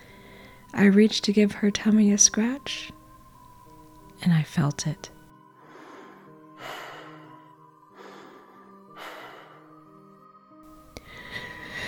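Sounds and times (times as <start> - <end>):
heavy breathing: 0.0 - 0.7, 5.6 - 10.0, 10.8 - 11.8
speech: 0.7 - 3.0, 4.2 - 5.2.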